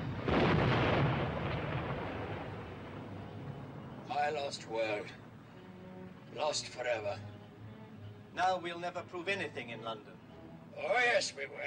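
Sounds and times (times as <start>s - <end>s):
massive explosion erupting in an immense fireball: 0.0s - 3.1s
speech: 4.2s - 5.2s, 6.3s - 7.3s, 8.4s - 10.2s, 10.8s - 11.6s.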